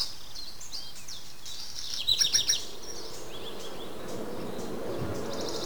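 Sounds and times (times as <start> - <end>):
steady outdoor hiss: 0.1 - 5.6
birds calling with high bright chirps: 1.5 - 5.6
low rumble: 1.6 - 5.6.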